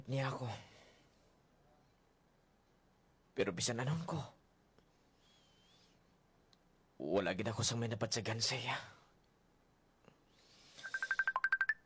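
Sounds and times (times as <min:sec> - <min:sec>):
speech: 0:00.0 - 0:00.7, 0:03.4 - 0:04.4, 0:07.0 - 0:09.0
mobile phone ringing with an incoming call: 0:10.8 - 0:11.8.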